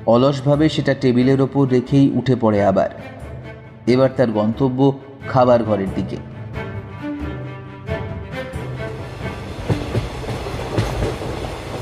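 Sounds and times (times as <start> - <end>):
speech: 0.0 - 6.3
passenger train rolling along rails after leaving a city station: 8.3 - 11.7
train wheels clacking over rail joints: 9.2 - 11.7.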